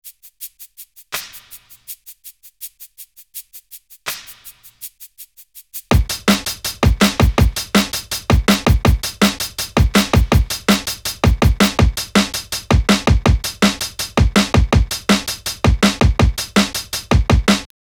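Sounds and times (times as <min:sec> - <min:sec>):
jungle drum breaks: 0:05.9 - 0:17.7.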